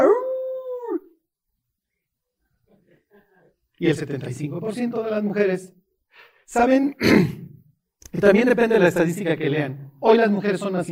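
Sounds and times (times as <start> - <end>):
wolf howl: 0.0 - 1.2
speech: 3.8 - 7.5, 8.1 - 10.9.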